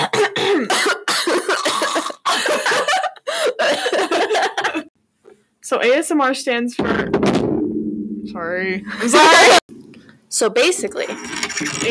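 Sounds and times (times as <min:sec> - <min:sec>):
person clearing throat: 0:00.0 - 0:02.4
laughter: 0:02.4 - 0:04.9, 0:08.9 - 0:09.6
speech: 0:05.8 - 0:07.5, 0:08.4 - 0:09.7, 0:10.4 - 0:11.8.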